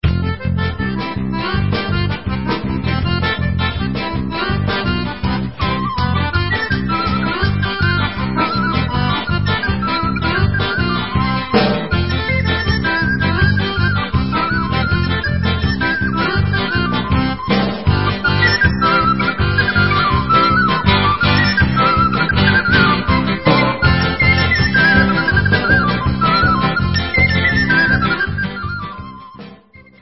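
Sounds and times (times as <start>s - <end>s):
Polish folk krakowiak instrumental: 0.0s - 29.9s.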